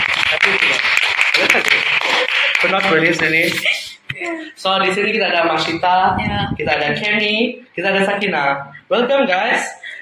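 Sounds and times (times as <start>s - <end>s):
crowd clapping steadily: 0.0s - 3.5s
speech: 2.7s - 10.0s.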